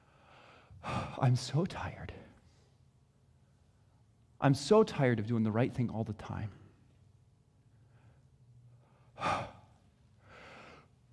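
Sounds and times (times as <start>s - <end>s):
deep breath: 0.0s - 1.2s, 7.7s - 11.0s
speech: 1.2s - 2.2s, 4.4s - 6.6s.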